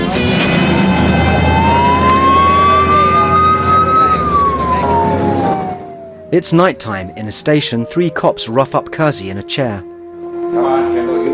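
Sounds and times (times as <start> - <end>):
police car siren wailing at an arrest scene: 0.2 - 11.3
speech: 6.4 - 9.9, 10.5 - 11.3.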